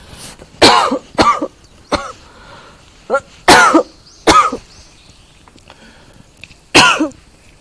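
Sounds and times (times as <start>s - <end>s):
person coughing: 0.6s - 2.2s, 3.1s - 4.6s, 6.8s - 7.2s.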